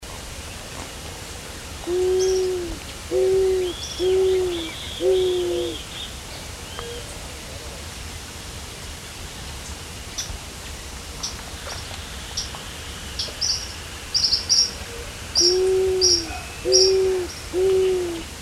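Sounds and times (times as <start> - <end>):
Zenaida auriculata pentheria eared dove calling: 1.8 - 5.8, 15.4 - 18.3.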